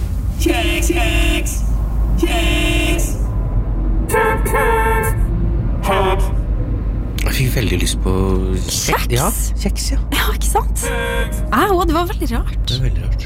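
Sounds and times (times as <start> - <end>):
low rumble of idling cars stuck in a traffic jam: 0.0 - 13.2
speech: 0.4 - 3.2, 7.4 - 13.2
car horns honking in a traffic jam: 0.4 - 3.4, 4.0 - 6.6, 10.6 - 12.5.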